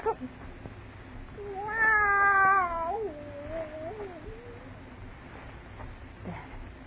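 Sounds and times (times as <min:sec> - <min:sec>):
cat meowing: 0:01.4 - 0:04.8.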